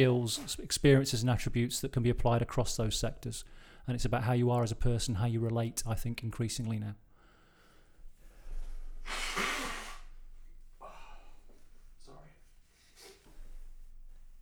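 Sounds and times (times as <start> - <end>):
speech: 0.0 - 7.0
soft snuffles: 8.5 - 10.3, 12.7 - 13.8
person blowing their nose: 8.9 - 10.3.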